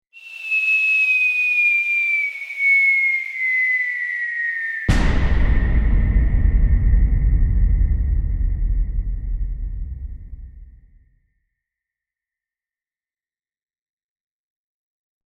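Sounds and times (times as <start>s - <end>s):
ascending bomb whistling: 0.1s - 8.0s
bomb explosion: 4.9s - 11.0s.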